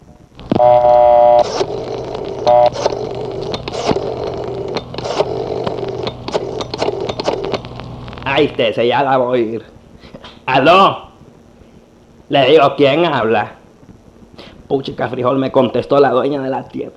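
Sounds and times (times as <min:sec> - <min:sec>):
constant rough hum: 0:00.0 - 0:12.4
loud electronic telephone dial tones: 0:00.4 - 0:08.6
speech: 0:08.4 - 0:09.8, 0:10.6 - 0:11.0, 0:12.3 - 0:13.6, 0:14.7 - 0:16.9.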